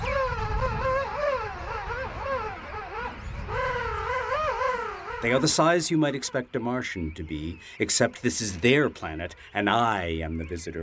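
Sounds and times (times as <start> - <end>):
king penguins singing wavering trumpeting calls: 0.0 - 6.5
speech: 5.2 - 10.8.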